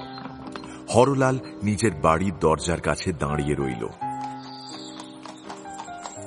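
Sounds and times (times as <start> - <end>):
hooves of a two-horse carriage clip-clopping at a trot down a lane: 0.0 - 1.6, 3.4 - 6.2
speech: 0.9 - 4.0.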